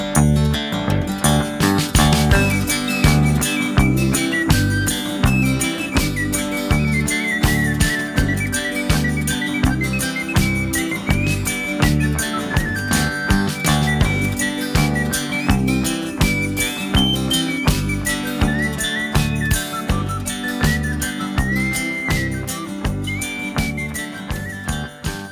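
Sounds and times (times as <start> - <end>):
clear whistled melody: 0.2 - 25.3
upbeat folk band playing with strummed guitars: 1.5 - 25.3.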